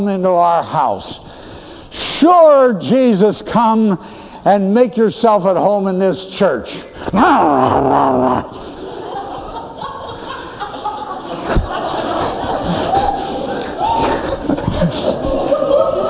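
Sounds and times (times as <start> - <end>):
speech: 0.0 - 1.4, 2.2 - 8.6
voice imitating a dog snarling and growling: 7.2 - 8.6
laughter: 7.4 - 16.0.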